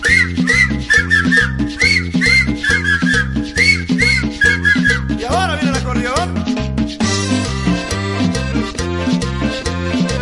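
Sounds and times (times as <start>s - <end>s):
whistled melody over a cumbia track: 0.0s - 5.9s
cumbia track with bouncing bass and rhythmic accompaniment: 0.0s - 10.2s.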